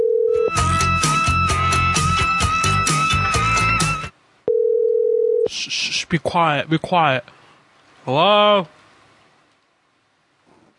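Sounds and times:
telephone dial tone after a hang-up: 0.0 - 0.6, 4.5 - 5.5
loud music: 0.5 - 4.1
speech: 6.1 - 7.4, 8.0 - 8.8.

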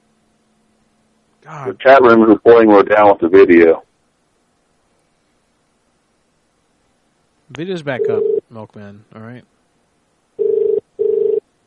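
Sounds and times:
speech: 1.4 - 3.9, 7.6 - 9.5
cell phone ringing: 8.0 - 8.4, 10.4 - 11.4.

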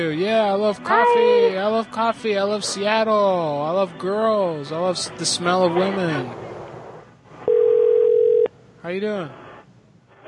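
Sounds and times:
speech: 0.0 - 6.5, 8.8 - 9.4
low noise: 0.0 - 10.2
telephone dial tone: 7.5 - 8.5.

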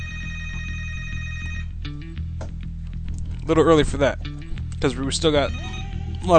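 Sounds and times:
telephone ringing as a caller phones in: 0.0 - 1.8, 5.4 - 6.2
speech: 3.5 - 6.3.

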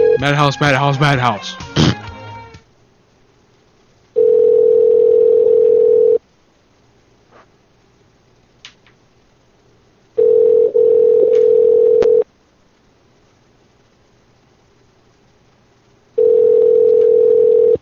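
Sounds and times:
speech: 0.2 - 1.9
telephone tone on the line while placing a call to a food mart: 4.2 - 6.2, 10.2 - 12.2, 16.2 - 17.8.

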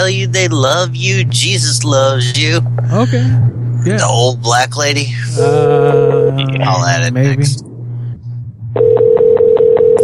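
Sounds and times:
speech: 0.0 - 7.7, 8.7 - 9.0
low hum: 0.0 - 10.0
odd electronic telephone ringback tone with rapid pulses: 8.8 - 10.0.

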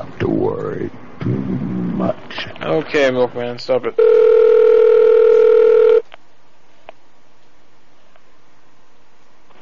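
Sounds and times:
speech: 2.0 - 4.6
telephone dial tone: 4.0 - 6.0.

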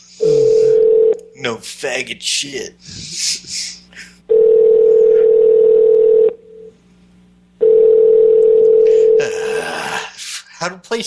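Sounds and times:
electronic telephone ringing tones over a phone line: 0.2 - 1.2, 4.3 - 6.7, 7.6 - 9.2
speech: 1.4 - 4.1, 10.6 - 11.0.

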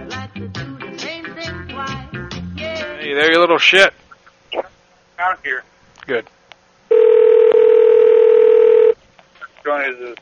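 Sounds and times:
speech: 3.1 - 6.4, 9.6 - 10.2
unanswered telephone call electronic line tone: 6.9 - 9.0.

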